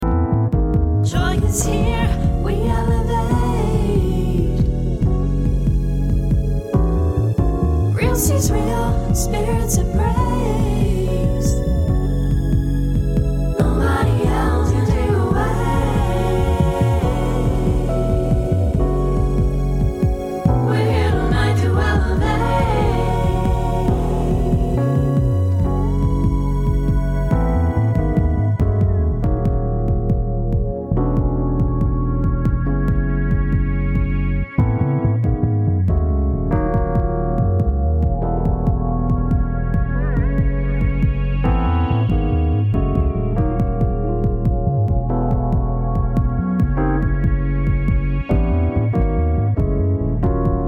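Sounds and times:
kick drums: 0:00.0 - 0:50.6.

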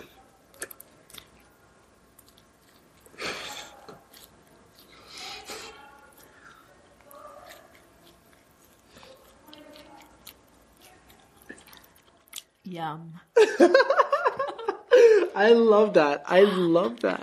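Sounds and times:
person chewing cold naan bread: 0:00.0 - 0:12.6
speech: 0:12.7 - 0:14.0, 0:15.4 - 0:17.2.

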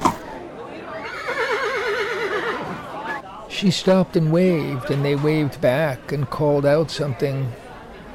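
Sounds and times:
horse pulling a wagon neighing: 0:01.0 - 0:02.9
speech: 0:03.6 - 0:07.6.

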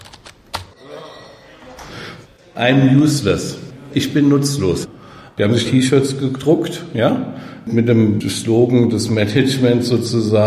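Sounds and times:
specialists typing on computer keyboards in a darkened data-processing room: 0:00.0 - 0:00.8
speech: 0:02.6 - 0:10.4.

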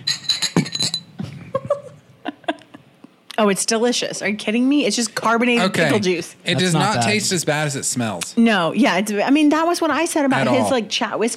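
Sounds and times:
glasses clinking in a toast: 0:00.0 - 0:01.2
speech: 0:03.4 - 0:11.3.

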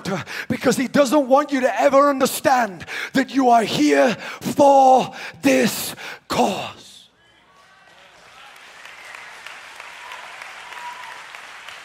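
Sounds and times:
speech: 0:00.1 - 0:06.8
large crowd clapping: 0:07.6 - 0:11.8.

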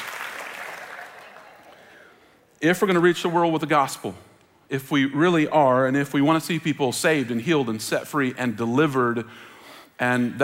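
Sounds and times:
church audience clapping: 0:00.0 - 0:02.1
speech: 0:02.6 - 0:10.4.

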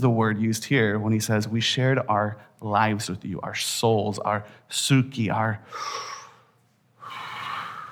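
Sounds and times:
speech: 0:00.0 - 0:06.2
person breathing in and out: 0:05.6 - 0:07.9.

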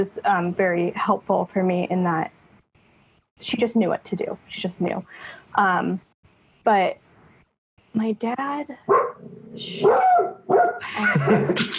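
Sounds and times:
speech: 0:00.0 - 0:02.4, 0:03.4 - 0:07.0, 0:07.9 - 0:11.7
dog barking and yipping: 0:08.9 - 0:09.2, 0:09.8 - 0:10.8
laughter: 0:10.8 - 0:11.7.

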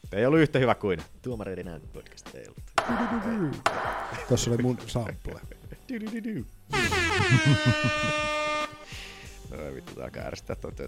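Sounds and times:
speech: 0:00.1 - 0:08.5, 0:09.6 - 0:10.8
loud blaring air horn blast: 0:06.7 - 0:09.0
laughter: 0:06.8 - 0:08.9.

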